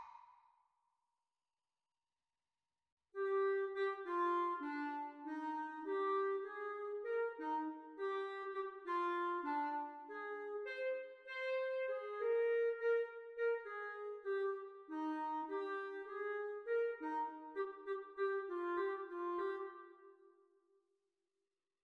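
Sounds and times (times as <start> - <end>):
clarinet duet practice: 3.2 - 20.4.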